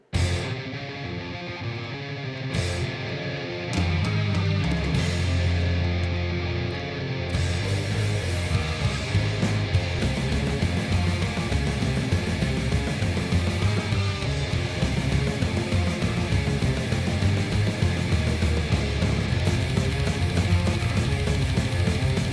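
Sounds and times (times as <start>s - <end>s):
distorted guitars in a dense metal song: 0.0s - 22.3s
rapid programmed drum machine beat: 7.5s - 22.3s.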